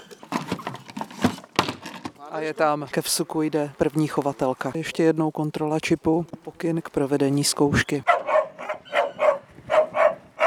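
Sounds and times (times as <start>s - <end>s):
speech: 2.3s - 8.1s
dog barking at a fox in an artificial den during a hunting-dog earth trial: 8.0s - 10.4s.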